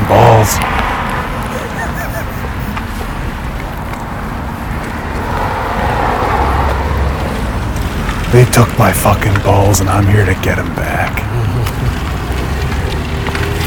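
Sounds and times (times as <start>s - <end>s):
car approaching with road rumble: 0.0s - 13.6s
faint wind: 0.0s - 13.6s
laughter: 1.3s - 3.2s, 11.0s - 13.3s
speech: 8.3s - 11.2s.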